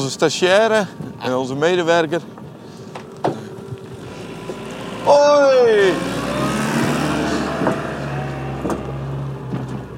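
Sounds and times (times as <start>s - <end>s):
speech: 0.0s - 2.4s, 5.0s - 6.2s
car engine driving past farm feed storage: 0.2s - 9.9s
knocks and rattles: 8.6s - 9.9s.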